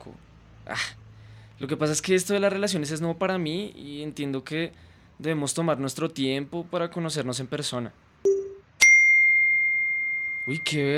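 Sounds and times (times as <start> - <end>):
speech: 0.1 - 1.0, 1.6 - 8.3, 10.5 - 10.9
cell phone notification ding: 8.3 - 10.6.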